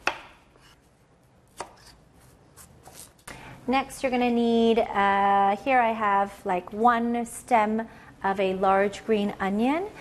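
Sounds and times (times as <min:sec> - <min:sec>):
knife chopping a potato into big chunks: 0:00.0 - 0:00.8, 0:01.5 - 0:03.1
speech: 0:03.7 - 0:09.9.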